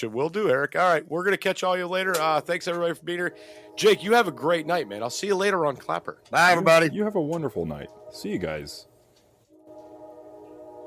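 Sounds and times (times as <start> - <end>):
speech: 0.0 - 8.9
train horn blaring: 2.7 - 10.8.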